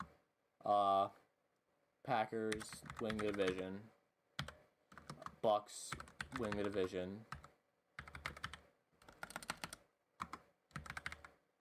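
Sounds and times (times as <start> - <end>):
speech: 0.6 - 1.2, 2.0 - 4.0, 5.4 - 7.4
typing on a computer keyboard: 2.5 - 3.6, 4.4 - 11.4.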